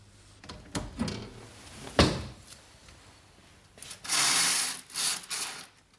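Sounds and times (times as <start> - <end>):
curtain being pulled aside at a window: 3.8 - 5.7.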